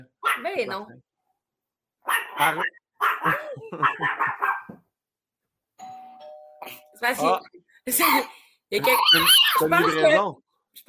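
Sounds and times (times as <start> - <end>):
speech: 0.0 - 1.1, 2.0 - 4.4, 6.6 - 10.8
excited dog barking: 0.2 - 0.6, 2.0 - 4.8
laughter: 3.2 - 4.4
doorbell two-tone chime: 5.8 - 7.0.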